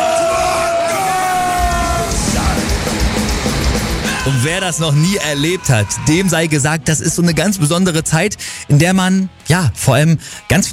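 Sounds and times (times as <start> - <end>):
large metal festival crowd chanting and yelling: 0.0 - 7.7
speech: 4.3 - 10.7.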